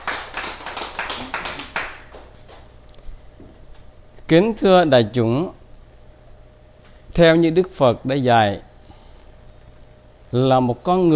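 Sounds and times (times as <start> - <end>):
audience applause: 0.0 - 2.6
speech: 4.3 - 5.6, 7.2 - 8.7, 10.3 - 11.1.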